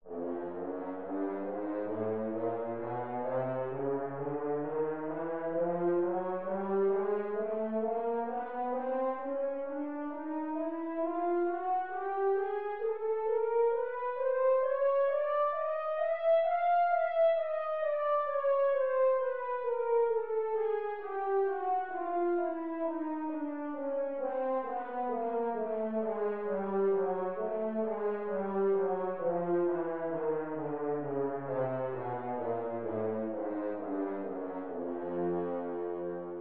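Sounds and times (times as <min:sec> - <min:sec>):
horn playing a chromatic scale: 0:00.1 - 0:36.4.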